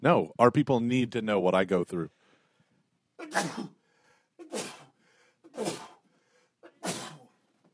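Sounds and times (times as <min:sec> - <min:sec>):
speech: 0:00.0 - 0:02.2, 0:03.2 - 0:03.8, 0:05.6 - 0:05.9
person sneezing: 0:03.2 - 0:03.8, 0:04.4 - 0:07.4.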